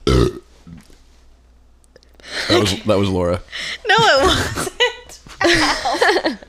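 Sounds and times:
loud deep belch after shotgunning a can of hard seltzer: 0:00.0 - 0:00.5
speech: 0:02.6 - 0:04.7, 0:05.4 - 0:06.4
laughter: 0:04.0 - 0:06.4.

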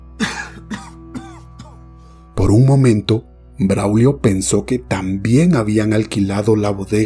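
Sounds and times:
elderly man coughing persistently: 0:00.2 - 0:01.8
speech: 0:02.4 - 0:07.0.

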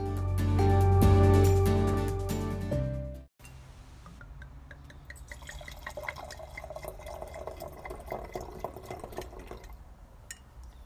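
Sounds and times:
music: 0:00.0 - 0:03.3
wine being poured from a bottle into a glass: 0:04.8 - 0:09.9.

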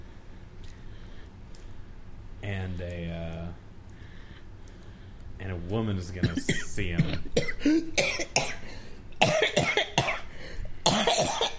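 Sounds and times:
speech: 0:02.5 - 0:03.6, 0:05.4 - 0:08.4
woman coughing and choking: 0:06.2 - 0:08.6, 0:09.2 - 0:11.5.

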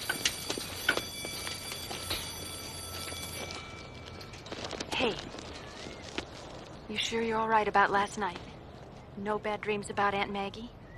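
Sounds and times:
train in Chicago rolling with irregular metallic clacks: 0:00.0 - 0:04.8
speech: 0:05.0 - 0:05.3, 0:06.9 - 0:08.5, 0:09.2 - 0:10.8.

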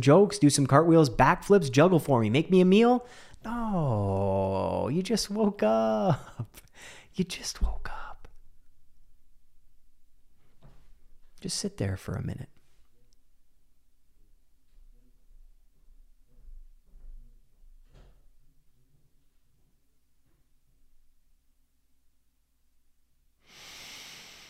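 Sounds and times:
speech: 0:00.0 - 0:08.1, 0:11.4 - 0:12.5
person inhaling through the nose and exhaling through the mouth after waking up: 0:03.1 - 0:03.4, 0:06.6 - 0:07.2, 0:23.4 - 0:24.4.

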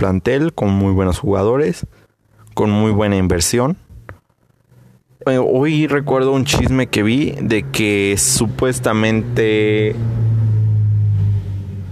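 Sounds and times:
speech: 0:00.0 - 0:02.0, 0:02.6 - 0:03.8, 0:05.2 - 0:10.2
car passing by outside with low engine rumble: 0:06.0 - 0:11.9.

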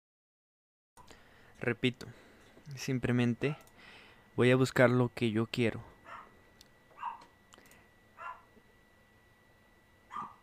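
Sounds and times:
faint steady hum: 0:01.0 - 0:10.4
speech: 0:01.6 - 0:03.7, 0:04.4 - 0:05.9
dog barking: 0:06.1 - 0:06.3, 0:07.0 - 0:07.3, 0:08.2 - 0:08.5, 0:10.1 - 0:10.4.

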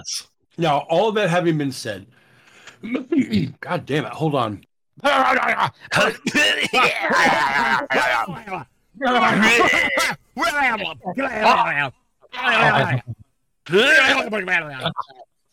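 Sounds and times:
speech: 0:00.0 - 0:02.2, 0:02.8 - 0:15.3
laughter: 0:05.0 - 0:11.7, 0:12.4 - 0:13.2
person clearing throat: 0:06.0 - 0:07.8.

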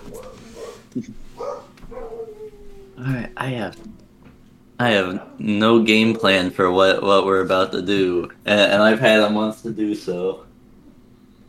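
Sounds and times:
dogs barking: 0:00.0 - 0:04.0, 0:04.9 - 0:06.8
speech: 0:01.0 - 0:01.4, 0:03.0 - 0:04.0, 0:04.8 - 0:10.5.

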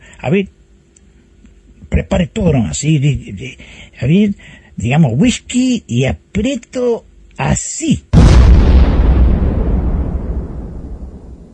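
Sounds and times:
speech: 0:00.2 - 0:00.6, 0:01.9 - 0:08.5
loud explosion with deep rumbling boom: 0:08.2 - 0:11.5.

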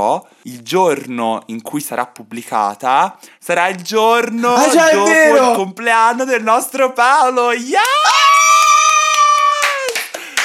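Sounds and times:
speech: 0:00.0 - 0:08.2
long sustained high-pitched cheer or whoop: 0:07.6 - 0:10.4
hands clapping in a steady quick rhythm: 0:07.8 - 0:10.4.

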